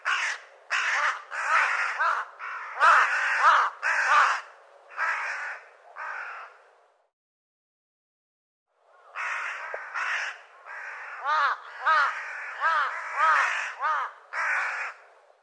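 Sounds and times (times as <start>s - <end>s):
bird cawing in harsh hoarse calls: 0.0s - 6.6s, 9.0s - 15.1s.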